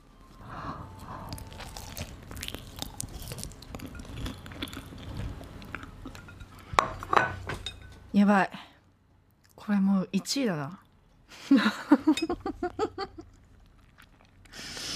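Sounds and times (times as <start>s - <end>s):
chewing: 1.0s - 6.6s, 13.2s - 14.7s
biting and crunching into food: 1.2s - 6.2s, 13.3s - 14.6s
speech: 8.2s - 8.7s, 9.7s - 10.8s, 11.4s - 12.9s.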